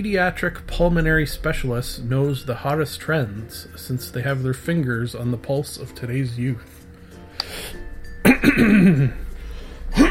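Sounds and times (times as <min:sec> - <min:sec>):
speech: 0:00.0 - 0:06.8, 0:08.4 - 0:09.2
person clearing throat as a comedic bit: 0:08.2 - 0:09.2.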